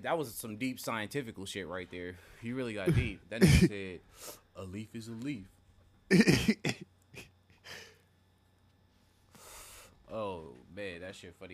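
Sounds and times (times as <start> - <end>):
speech: 0.0 - 6.7, 10.1 - 11.5
person coughing: 2.9 - 3.8, 6.1 - 7.9.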